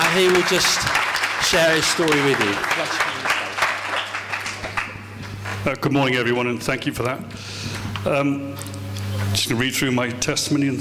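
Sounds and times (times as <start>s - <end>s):
crowd clapping steadily: 0.0s - 5.6s
speech: 0.2s - 3.4s, 5.6s - 10.8s.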